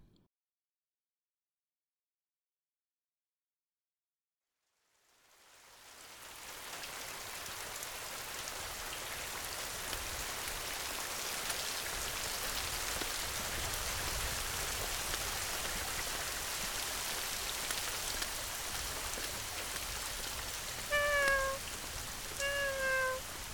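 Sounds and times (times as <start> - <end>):
steady rain: 4.8 - 23.5
kitten meowing in the rain: 20.9 - 21.6, 22.4 - 23.2.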